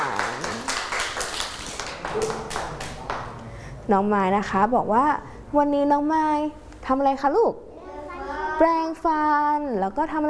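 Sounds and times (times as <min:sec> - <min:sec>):
children clapping their hands: 0:00.0 - 0:03.4
speech: 0:02.2 - 0:02.4, 0:03.9 - 0:07.7, 0:08.6 - 0:10.2.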